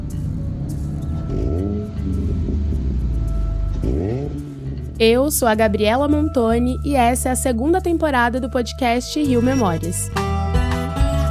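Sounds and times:
car engine rumbling and revving as it accelerates: 0.0s - 6.9s
speech: 5.0s - 10.2s.

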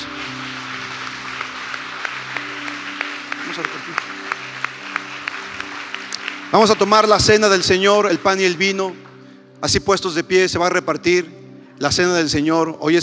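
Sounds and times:
congregation applauding: 0.0s - 9.8s
speech: 3.5s - 4.2s, 6.5s - 9.0s, 9.6s - 13.0s.

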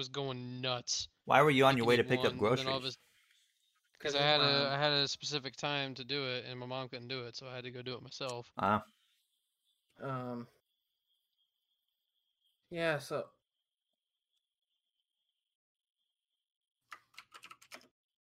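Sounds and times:
speech: 0.0s - 3.1s, 4.0s - 9.0s, 10.0s - 10.6s, 12.7s - 13.4s
wordless vocal sounds: 1.1s - 3.0s, 4.0s - 7.2s
computer keyboard typing: 16.9s - 17.9s.

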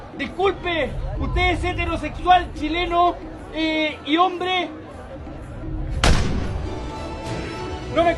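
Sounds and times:
speech: 0.2s - 4.8s, 8.0s - 8.1s
steady noisy rumble: 0.6s - 3.6s
single loud gunshot: 6.0s - 6.8s.

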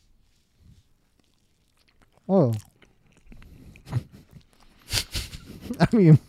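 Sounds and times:
crunchy chewing of a grilled cheese and banana sandwich: 1.0s - 5.3s
soft mouth sounds: 1.8s - 6.2s
speech: 2.3s - 2.7s, 5.8s - 6.2s.

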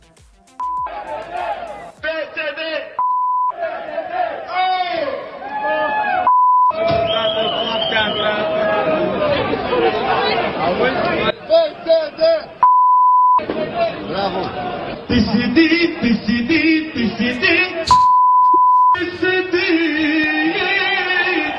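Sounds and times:
loud crowd chanting and shouting together: 0.6s - 12.6s, 13.4s - 21.5s
shrill whistle trills: 7.0s - 8.4s.

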